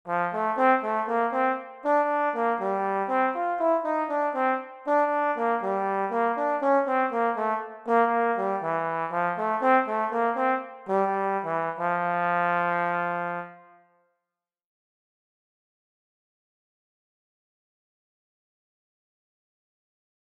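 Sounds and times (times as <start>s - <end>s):
trombone: 0.1s - 13.8s.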